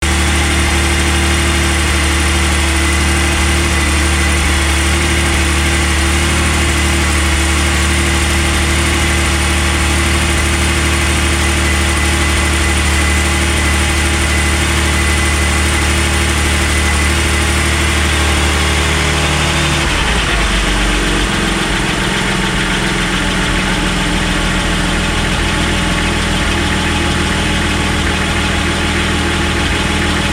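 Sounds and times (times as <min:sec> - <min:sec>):
engine ticking on a cold start: 0:00.0 - 0:30.3.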